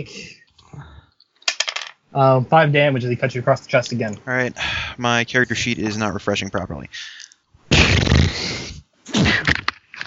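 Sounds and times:
speech: 0.0 - 0.8, 2.1 - 7.2
loud sneeze: 7.7 - 9.6.

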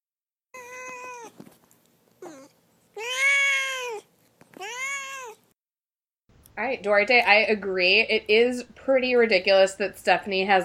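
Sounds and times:
domestic cat meowing: 0.5 - 1.4, 2.2 - 5.5
speech: 6.6 - 10.6.

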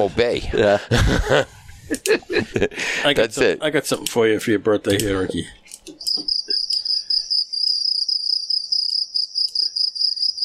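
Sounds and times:
laughter: 0.0 - 3.2
speech: 0.0 - 6.3
crickets chirping: 6.0 - 10.4.

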